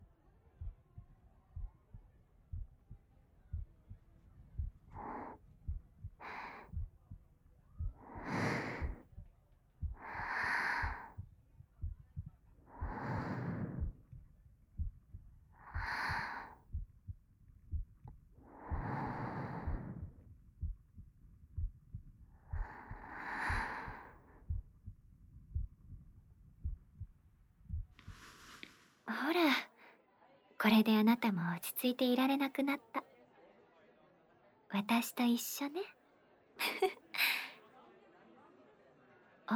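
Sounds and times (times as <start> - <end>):
heartbeat thumping: 0.0 - 28.7
soft breathy exhalations: 8.0 - 9.1, 10.0 - 11.2, 12.8 - 14.0, 22.6 - 24.4, 28.0 - 29.1, 36.6 - 37.6
speech: 30.6 - 33.0, 34.8 - 36.0.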